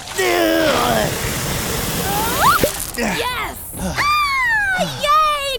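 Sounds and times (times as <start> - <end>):
forceful water spray gushing with a loud hiss: 0.3 - 3.0
excited voices crying out: 2.1 - 5.4.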